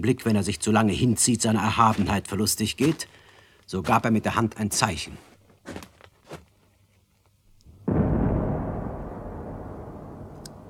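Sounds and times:
speech: 0:00.0 - 0:05.9
signal cannon firing a single shot: 0:07.7 - 0:10.6.

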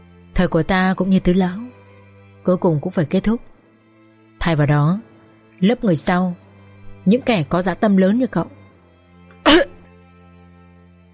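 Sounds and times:
speech: 0:00.4 - 0:01.6, 0:02.4 - 0:03.5, 0:04.4 - 0:06.4, 0:07.0 - 0:08.6
old man coughing: 0:09.5 - 0:09.9.

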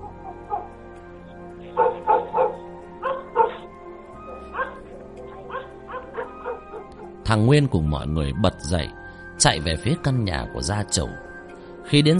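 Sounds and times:
dog yelping as if hurt: 0:00.0 - 0:00.8, 0:01.8 - 0:07.2
dog barking fiercely: 0:00.2 - 0:00.7, 0:01.7 - 0:03.7, 0:04.3 - 0:07.2
speech: 0:07.3 - 0:11.2, 0:11.9 - 0:12.1.

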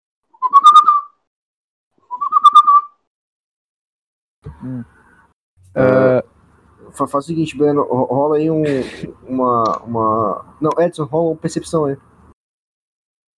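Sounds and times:
person whistling as a signal: 0:00.4 - 0:01.2, 0:02.1 - 0:03.0
brief low vocal sounds: 0:04.4 - 0:05.0, 0:05.7 - 0:06.3, 0:08.5 - 0:10.6
speech: 0:04.6 - 0:05.0, 0:05.7 - 0:06.3, 0:06.9 - 0:12.1.

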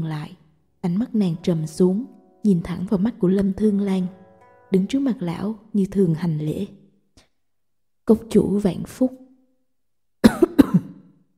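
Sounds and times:
speech: 0:00.0 - 0:06.8, 0:08.1 - 0:09.2
dry cough from an old man: 0:10.2 - 0:11.0.

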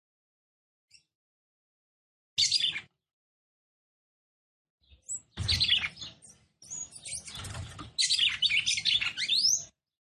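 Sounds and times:
female red-cowled cardinal song: 0:02.4 - 0:02.9, 0:04.8 - 0:09.8.

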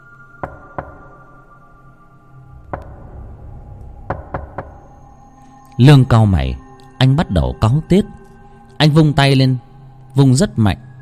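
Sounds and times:
knocking on a door: 0:00.4 - 0:01.2, 0:02.7 - 0:03.1, 0:04.1 - 0:04.9
speech: 0:05.8 - 0:08.2, 0:08.8 - 0:09.6, 0:10.2 - 0:10.9.

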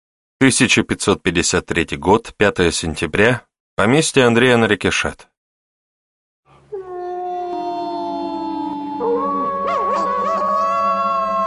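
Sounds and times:
speech: 0:00.4 - 0:05.3
wolves howling in distant forest: 0:06.7 - 0:11.4.

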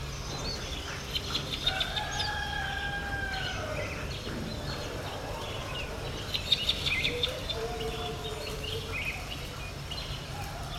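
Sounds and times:
steady low background noise: 0:00.0 - 0:10.7
rooster crowing at sunrise in Yaoundé Cameroon: 0:01.6 - 0:03.9.

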